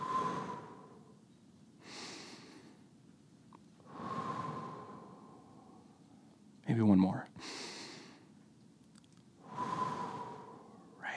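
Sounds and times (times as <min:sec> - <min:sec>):
group of people inhaling and exhaling: 0:00.0 - 0:01.2, 0:01.8 - 0:02.9, 0:03.8 - 0:06.4, 0:07.4 - 0:08.3, 0:09.4 - 0:11.1.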